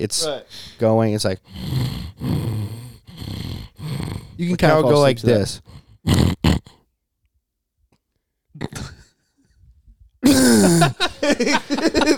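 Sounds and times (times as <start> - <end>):
speech: 0.0 - 2.5, 4.4 - 6.6, 8.6 - 8.9, 10.3 - 12.1
faint breath: 0.5 - 0.8, 1.4 - 4.4, 5.5 - 6.8
loud sudden gasp: 1.4 - 6.8, 10.2 - 11.3
person imitating rhythmic snoring: 1.4 - 6.8, 8.6 - 9.1, 10.2 - 11.0
laughter: 10.2 - 12.1.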